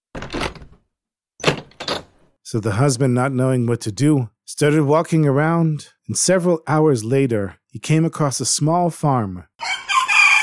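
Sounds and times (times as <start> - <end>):
door slamming shut: 0.1 - 0.8
speech: 2.5 - 9.7.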